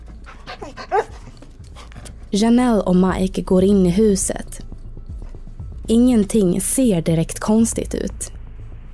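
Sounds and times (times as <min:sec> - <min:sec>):
anxious stressed dog panting: 0:00.0 - 0:02.3
anxious dog whimpering: 0:00.4 - 0:01.3
speech: 0:02.3 - 0:04.5, 0:05.9 - 0:08.4.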